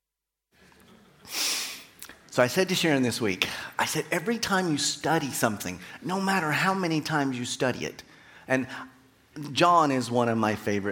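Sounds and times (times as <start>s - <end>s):
nose blowing: 1.2s - 2.0s
speech: 2.4s - 10.9s.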